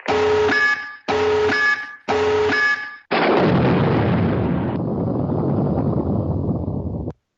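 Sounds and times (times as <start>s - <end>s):
loud identical electronic alarm blasts: 0.0s - 3.1s
massive explosion with sustained roaring rumble: 3.1s - 7.1s.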